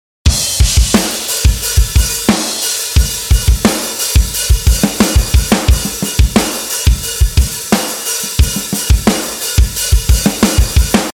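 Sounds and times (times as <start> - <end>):
pop punk loop with ghost notes: 0.3 - 11.1.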